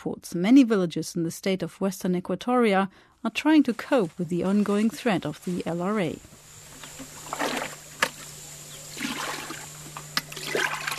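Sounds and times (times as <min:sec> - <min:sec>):
speech: 0:00.0 - 0:06.4
faint steady hum: 0:00.0 - 0:10.9
large bucket scooping brown brackish water from a shallow hole in Western Equatoria: 0:06.7 - 0:08.3, 0:08.9 - 0:10.9.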